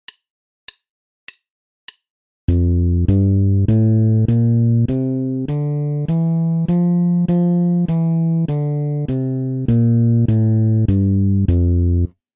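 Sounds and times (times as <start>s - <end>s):
bass playing an F major scale exercise: 2.5s - 12.1s.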